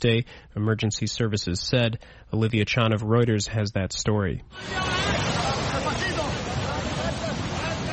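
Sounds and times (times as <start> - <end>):
speech: 0.0 - 6.3
rushing wind at sea: 4.5 - 7.9
churning sea water: 4.6 - 7.9
many voices shouting during a rescue at sea: 4.6 - 7.9.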